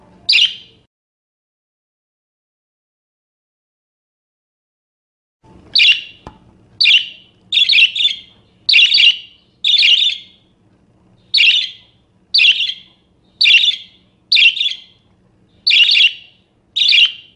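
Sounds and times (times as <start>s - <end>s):
quiet low hum: 0.0s - 0.9s, 5.4s - 17.3s
parakeet rasping screeching calls: 0.3s - 0.7s, 5.8s - 6.2s, 6.8s - 10.4s, 11.3s - 11.8s, 12.4s - 15.0s, 15.6s - 17.3s.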